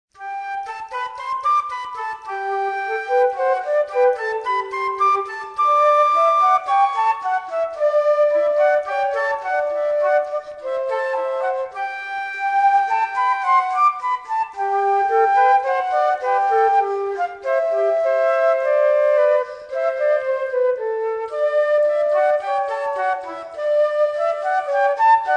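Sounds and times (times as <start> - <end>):
fugue played by a duo of transverse flutes: 0.2 - 25.3.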